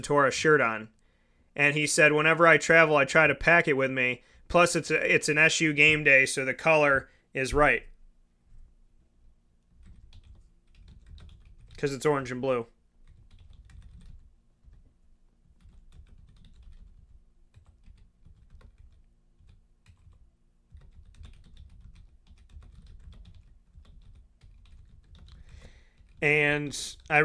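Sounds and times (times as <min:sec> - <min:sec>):
speech: 0:00.0 - 0:01.0, 0:01.6 - 0:07.9, 0:11.8 - 0:12.7, 0:26.2 - 0:27.2
typing a message on a computer keyboard: 0:09.8 - 0:11.8, 0:13.0 - 0:14.9, 0:15.5 - 0:26.2.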